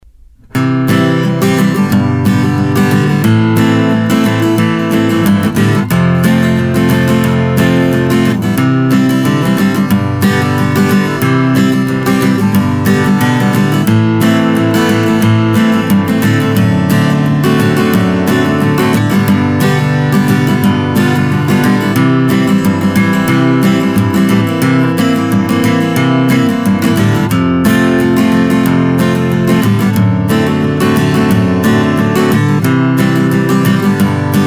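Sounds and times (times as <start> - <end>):
guitar strumming: 0.0 - 34.4.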